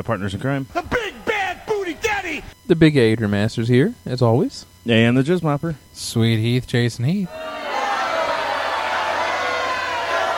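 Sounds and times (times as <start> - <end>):
speech: 0.0 - 1.2, 2.3 - 7.4
crowd cheering and roaring: 7.3 - 10.3.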